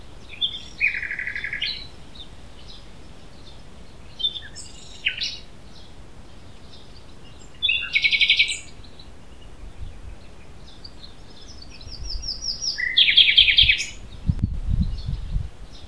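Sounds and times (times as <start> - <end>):
Common Nightingale Luscinia megarhynchos singing: 0.0 - 15.8
low thumping noise: 14.2 - 15.6.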